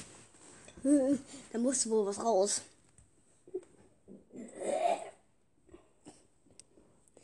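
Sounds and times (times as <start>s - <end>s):
speech: 0.8s - 2.7s
person retching and gagging: 3.5s - 5.3s
person with guttural coughs and splutters: 4.3s - 5.2s.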